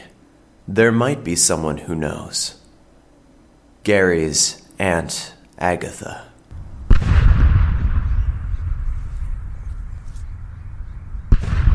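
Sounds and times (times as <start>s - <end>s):
speech: 0.7s - 2.6s, 3.8s - 6.3s
cannon firing boom after a funeral: 6.5s - 11.7s.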